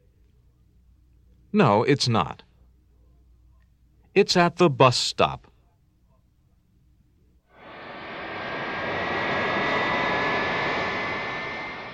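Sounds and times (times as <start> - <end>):
speech: 1.5 - 2.5, 4.2 - 5.5
Boeing jet airliner engine roar: 7.6 - 11.9.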